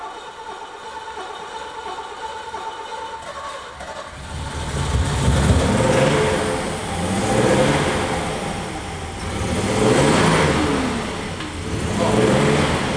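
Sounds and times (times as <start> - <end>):
vintage rally car engine revving over idle: 3.2 - 12.9.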